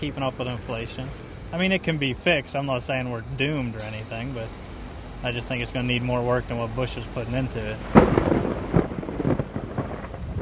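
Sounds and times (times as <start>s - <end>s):
speech: 0.0s - 4.6s, 5.2s - 8.6s
steady rain hiss in a summer thunderstorm: 0.0s - 10.4s
low rumbling thunder in a summer thunderstorm: 7.8s - 10.4s.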